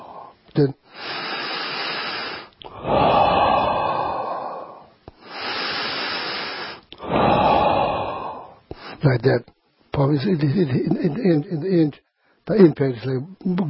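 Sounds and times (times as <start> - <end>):
forceful exhales and inhales through the nose: 0.0 - 9.0
speech: 0.6 - 1.4, 2.8 - 3.1, 9.0 - 13.6.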